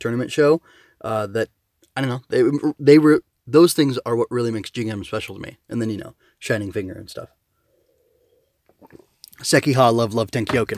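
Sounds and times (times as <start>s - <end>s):
speech: 0.0s - 7.4s, 8.8s - 10.7s
person gulping a sip of coffee: 8.0s - 9.3s.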